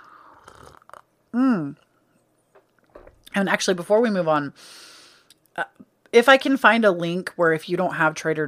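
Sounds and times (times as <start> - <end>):
person sipping from a cup: 0.0 - 1.0
speech: 1.3 - 1.8, 3.4 - 4.9, 5.6 - 8.4.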